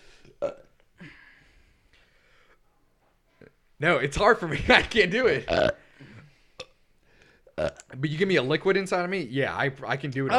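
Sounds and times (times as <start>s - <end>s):
throaty burp: 0.3s - 0.8s, 5.4s - 6.8s, 7.5s - 7.9s
soft guttural belch-like sound: 0.4s - 0.8s, 5.4s - 5.8s, 7.6s - 7.9s
speech: 3.8s - 5.8s, 7.6s - 10.3s.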